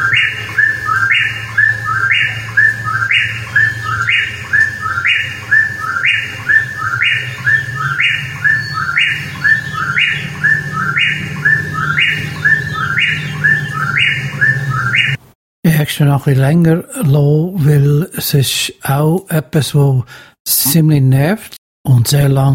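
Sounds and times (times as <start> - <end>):
bird chirping a short two-part phrase: 0.0 - 15.2
constant low hum: 0.0 - 15.2
speech: 16.0 - 22.5.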